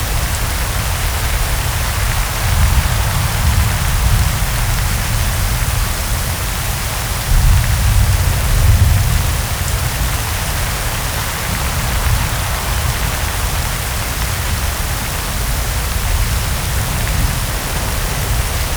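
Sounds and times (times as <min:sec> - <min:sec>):
desert rain: 0:00.0 - 0:18.7.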